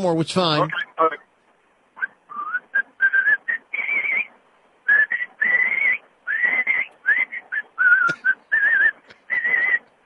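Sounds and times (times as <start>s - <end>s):
speech: 0.0s - 0.8s
person whistling a warbling birdlike melody over a tinny phone line: 2.3s - 4.3s, 4.9s - 9.8s.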